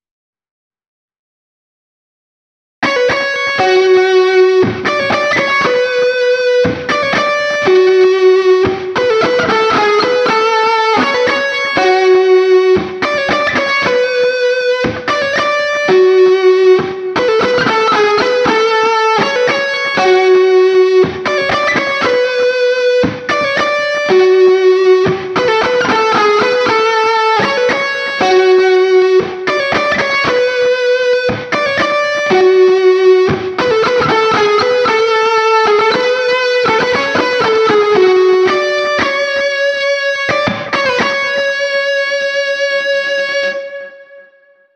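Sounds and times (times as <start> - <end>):
intro lead guitar: 2.8 - 44.7.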